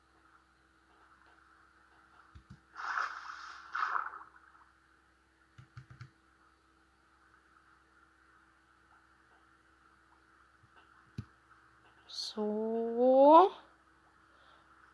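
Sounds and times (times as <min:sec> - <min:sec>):
video game character swimming through water: 0:02.6 - 0:04.7
speech: 0:12.3 - 0:13.0.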